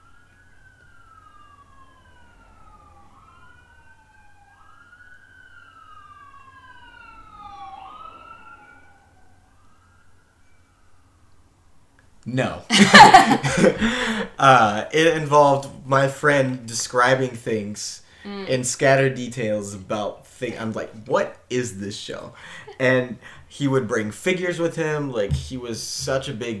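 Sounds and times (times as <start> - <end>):
ambulance siren wailing outside: 0.0 - 11.6, 12.7 - 14.9, 22.1 - 25.1
speech: 12.3 - 26.5
laughter: 12.7 - 14.7.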